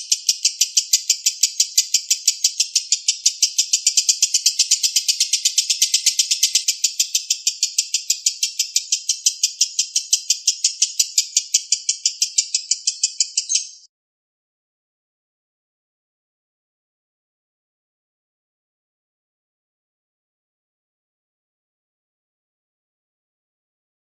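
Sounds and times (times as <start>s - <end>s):
lovebird long trill: 0.0s - 13.9s.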